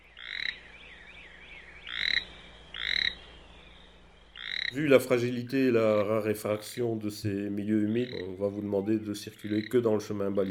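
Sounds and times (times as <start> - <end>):
toad calling in short bright rasping bursts: 0.0 - 5.2, 7.7 - 10.5
speech: 4.7 - 10.5.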